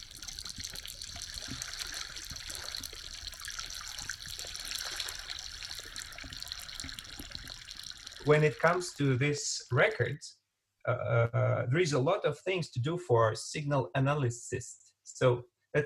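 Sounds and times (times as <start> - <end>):
bubbles escaping from melting glacier ice, recorded underwater: 0.0 - 10.0
speech: 8.3 - 15.8.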